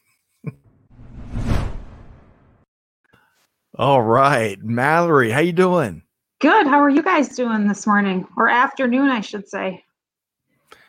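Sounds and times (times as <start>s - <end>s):
broadband swoosh: 0.9s - 2.6s
speech: 3.8s - 9.9s.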